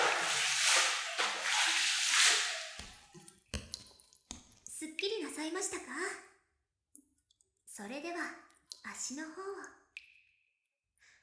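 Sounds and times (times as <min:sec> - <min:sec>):
water poured over a person to rinse them off: 0:00.0 - 0:06.0
water dripping and trickling: 0:00.0 - 0:10.3
speech: 0:05.4 - 0:06.3, 0:07.8 - 0:09.8.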